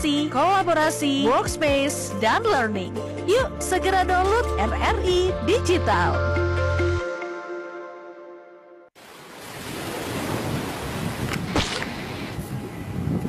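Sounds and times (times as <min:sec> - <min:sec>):
speech: 0:00.0 - 0:06.4
held musical tone: 0:00.0 - 0:08.8
rushing surf of ocean waves at the seaside: 0:09.0 - 0:12.4.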